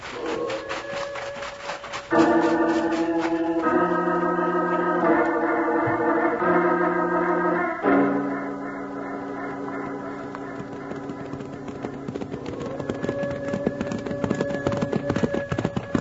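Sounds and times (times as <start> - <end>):
horse hooves clip-clopping as riders give chase on a mountain: 0.0 - 4.2, 9.2 - 15.9
sustained droning tones: 2.2 - 12.4.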